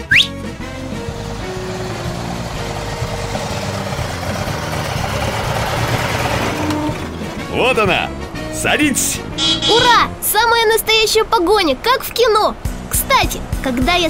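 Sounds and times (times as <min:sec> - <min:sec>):
car engine idling: 0:00.0 - 0:08.3
speech: 0:07.6 - 0:14.0.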